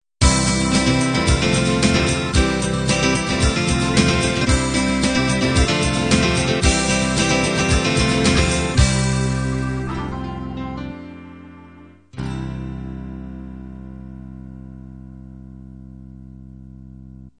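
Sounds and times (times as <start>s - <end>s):
pop 16 beat ending: 0.2s - 9.8s.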